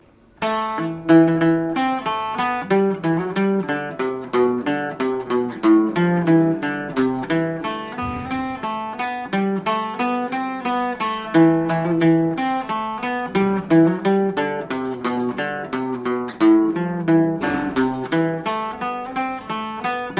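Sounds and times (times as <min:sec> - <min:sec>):
folk tune: 0:00.4 - 0:20.1.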